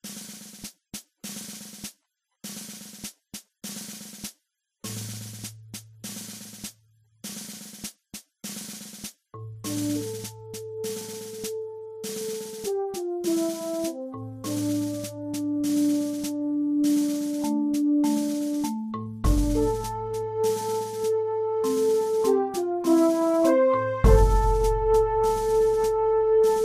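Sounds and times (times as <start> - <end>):
fanfare: 10.0 - 18.6, 19.3 - 26.6.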